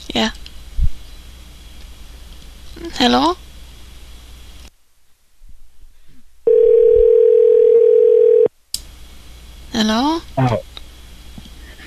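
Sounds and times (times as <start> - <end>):
speech: 0.2 - 0.4, 3.0 - 3.4
telephone dial tone while placing a call: 6.5 - 8.5.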